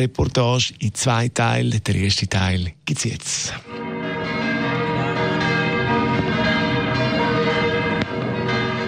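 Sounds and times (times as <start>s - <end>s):
speech: 0.0s - 3.9s
several large church bells pealing in the new year: 3.6s - 8.8s.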